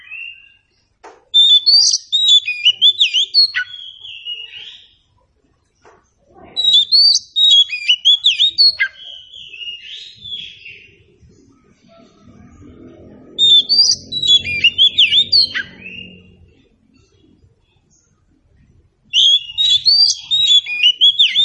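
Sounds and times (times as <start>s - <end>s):
Oriental Magpie-Robin song: 1.4s - 5.0s, 6.6s - 12.1s, 12.8s - 16.4s, 19.1s - 21.4s
faint low rumble: 10.2s - 19.2s.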